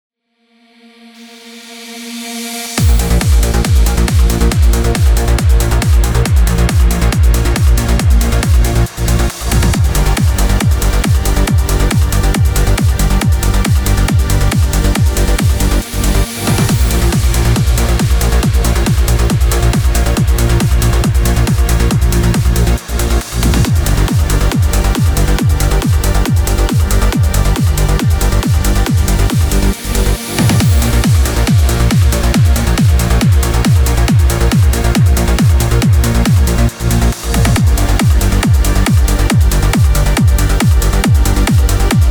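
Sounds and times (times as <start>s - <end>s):
trance kick drums: 2.7s - 42.1s.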